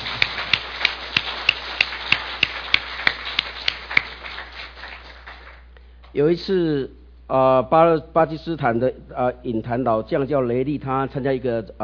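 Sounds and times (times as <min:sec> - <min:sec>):
audience clapping in unison: 0:00.0 - 0:05.7
speech: 0:06.1 - 0:11.8.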